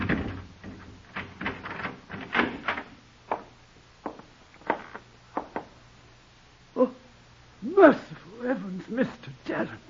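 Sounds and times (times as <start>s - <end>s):
door opening: 0.0s - 3.5s
speech: 7.8s - 9.8s.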